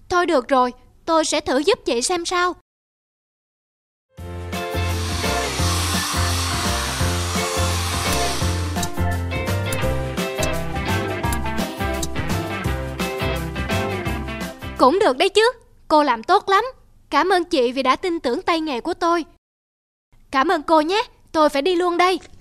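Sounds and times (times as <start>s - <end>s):
speech: 0.2s - 2.6s, 14.8s - 19.4s, 20.3s - 22.3s
rhythmic music: 4.4s - 14.7s
hair dryer blow-drying a woman's messy hair straight in a salon: 4.5s - 10.7s.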